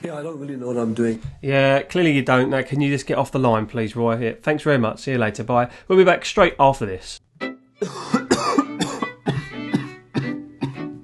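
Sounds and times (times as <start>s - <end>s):
speech: 0.0s - 7.2s
person clearing throat: 7.8s - 11.0s
person coughing: 7.8s - 11.0s.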